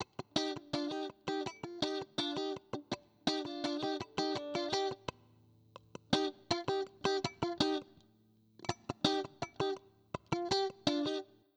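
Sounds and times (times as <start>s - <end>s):
soul rhythm guitar in C minor: 0.0s - 11.5s.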